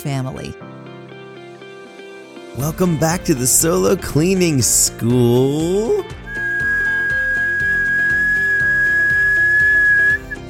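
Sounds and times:
speech: 0:00.0 - 0:00.7, 0:02.5 - 0:06.2
tea kettle whistling: 0:05.5 - 0:10.4.

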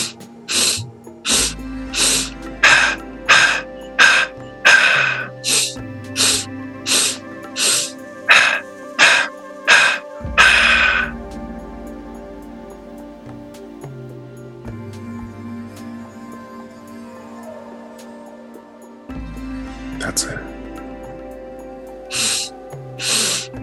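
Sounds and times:
slow counted breathing in and out as a breathwork exercise: 0:00.0 - 0:11.2
soft sustained low tones: 0:00.0 - 0:23.6.

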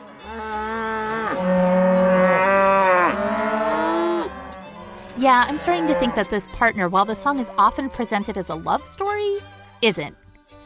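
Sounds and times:
cow mooing loudly: 0:00.0 - 0:08.2
speech: 0:05.2 - 0:10.2.

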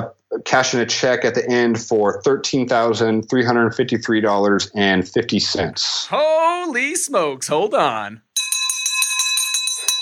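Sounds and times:
speech: 0:00.0 - 0:08.3
victory bell rung rapidly in celebration of a closed deal: 0:08.4 - 0:09.9.

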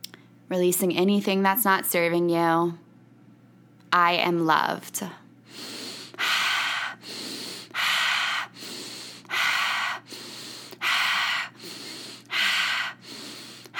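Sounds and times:
speech: 0:00.5 - 0:02.8, 0:03.9 - 0:05.8
forceful deep breathing in and out: 0:05.4 - 0:13.7.

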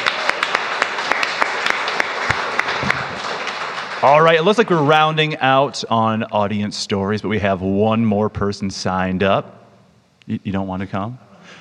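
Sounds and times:
crowd applauding: 0:00.0 - 0:05.0
speech: 0:04.0 - 0:09.6, 0:10.3 - 0:11.5.

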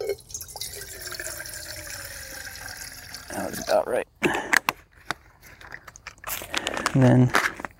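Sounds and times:
water pouring into a cooking pot to cook rice and quinoa: 0:00.0 - 0:03.8
speech: 0:03.3 - 0:04.6, 0:07.0 - 0:07.5.

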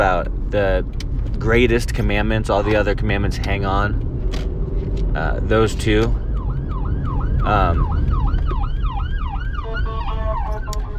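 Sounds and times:
speech: 0:00.0 - 0:04.5, 0:05.2 - 0:06.2, 0:07.4 - 0:08.0
traffic rumble: 0:00.0 - 0:10.9
ambulance siren wailing: 0:06.0 - 0:10.9
horn-like blast: 0:09.6 - 0:10.9.

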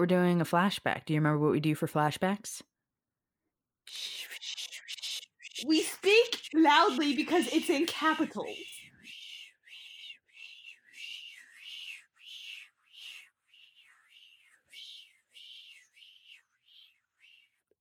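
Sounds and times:
speech: 0:00.0 - 0:02.7, 0:03.9 - 0:04.7, 0:05.6 - 0:08.8
voice imitating a tape rewinding with breathy whooshing bursts: 0:03.9 - 0:08.8.

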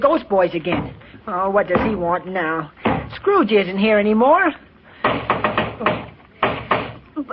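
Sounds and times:
speech: 0:00.0 - 0:04.6
firm knocking on a door: 0:01.7 - 0:02.0, 0:02.8 - 0:03.2, 0:05.0 - 0:07.0.

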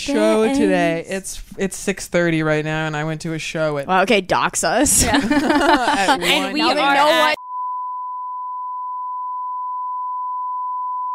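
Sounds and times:
speech: 0:00.0 - 0:07.4
laughter: 0:04.8 - 0:07.4
censor bleep mid-pitched sine tone: 0:07.4 - 0:11.1.

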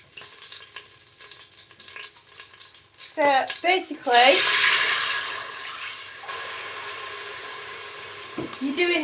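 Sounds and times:
stirring with light scraping ticks while deglazing an Instant Pot: 0:00.0 - 0:03.8
faint sizzling in an Instant Pot being deglazed after browning steaks in olive oil: 0:00.0 - 0:09.0
speech: 0:03.2 - 0:04.8, 0:08.6 - 0:09.0.

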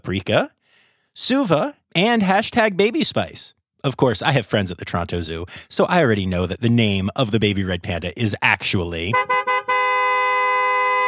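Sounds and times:
speech: 0:00.0 - 0:00.6, 0:01.2 - 0:09.5
car horn honking: 0:09.1 - 0:11.0.

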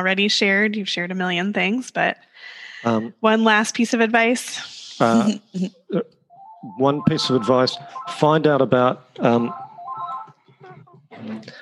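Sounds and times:
speech: 0:00.0 - 0:09.6
landline telephone ringing with warbling tone: 0:06.3 - 0:08.5, 0:09.2 - 0:10.9
laughter: 0:09.2 - 0:09.5.

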